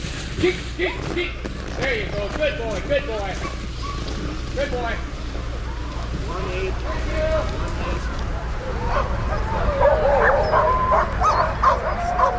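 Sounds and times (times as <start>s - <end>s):
low rumbling outdoor background: 0.0s - 12.3s
pack of sled dogs barking and yipping: 0.0s - 12.3s
speech: 0.4s - 3.6s, 4.6s - 5.1s, 6.3s - 11.3s
sled dogs whining: 3.4s - 4.2s, 8.7s - 12.3s.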